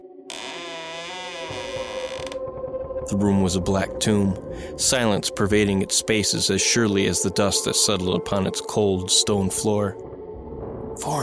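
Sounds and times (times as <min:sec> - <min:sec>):
room door creaking open: 0:00.3 - 0:02.4
speech: 0:03.1 - 0:10.1, 0:11.0 - 0:11.2.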